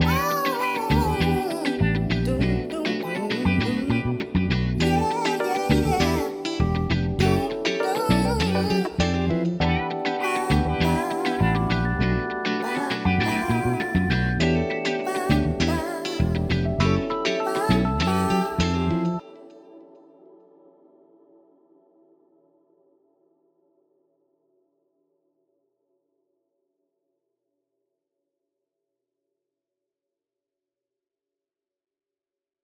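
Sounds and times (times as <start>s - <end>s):
funk groove sample without drums: 0.0s - 19.2s.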